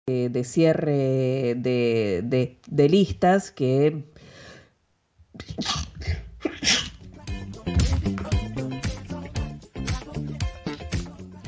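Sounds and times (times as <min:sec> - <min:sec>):
speech: 0:00.1 - 0:04.3, 0:05.4 - 0:06.8
person sneezing: 0:05.4 - 0:07.0
rhythmic music with a steady beat: 0:06.9 - 0:11.4.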